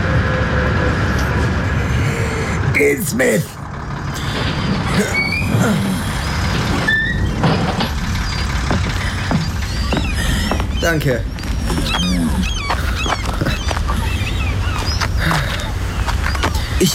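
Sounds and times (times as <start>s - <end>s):
large vehicle idling and rumbling: 0.1s - 16.9s
speech: 2.8s - 3.6s, 10.9s - 12.6s, 16.8s - 16.9s.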